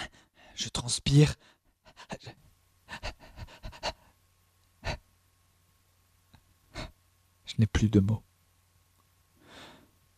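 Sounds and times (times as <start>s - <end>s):
quick heavy panting breaths and gasping exhales: 0.0s - 0.6s, 1.4s - 2.3s, 2.9s - 4.2s, 4.8s - 5.1s, 6.7s - 7.0s
speech: 0.6s - 3.2s, 7.6s - 8.3s.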